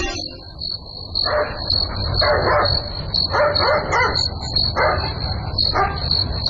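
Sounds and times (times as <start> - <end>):
steady high cricket chirring: 0.1 - 6.4
dog barking at night: 1.2 - 6.1.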